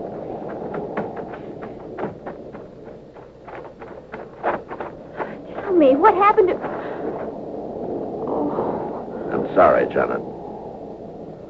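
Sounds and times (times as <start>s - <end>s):
hooves of horses galloping: 0.0s - 8.0s
steady windy hiss: 0.0s - 11.4s
speech: 5.8s - 6.7s, 9.6s - 10.4s.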